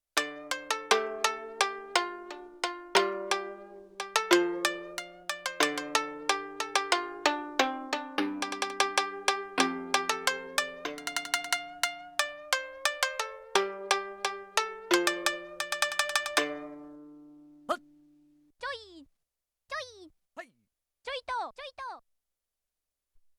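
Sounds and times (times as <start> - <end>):
long shamisen string sampled on a Yamaha TX16W: 0.0 - 17.9.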